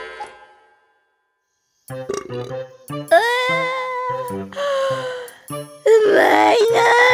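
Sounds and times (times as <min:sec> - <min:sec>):
cups clinking together in a toast with daiginjo sake by the sea: 0:01.9 - 0:02.6
speech: 0:01.9 - 0:07.0.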